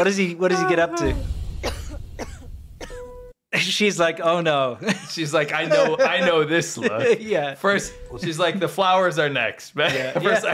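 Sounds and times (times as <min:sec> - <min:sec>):
speech: 0:00.0 - 0:01.8, 0:03.6 - 0:10.5
wife coughing harshly in an advert for Chinese medicine: 0:01.6 - 0:03.2
laughter: 0:04.8 - 0:08.7, 0:09.8 - 0:10.5.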